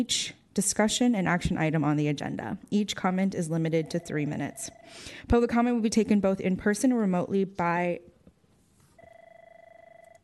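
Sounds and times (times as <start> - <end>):
speech: 0.0 - 8.1
faint room noise: 0.0 - 10.2
telephone with steady electronic warbling ring: 3.8 - 5.2, 9.0 - 10.2.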